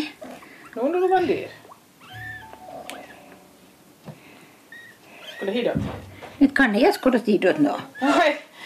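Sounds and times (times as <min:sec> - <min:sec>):
faint rustling: 0:00.0 - 0:07.8
three kittens mewing: 0:00.4 - 0:03.3, 0:04.7 - 0:05.6
speech: 0:00.8 - 0:01.6, 0:05.4 - 0:08.4.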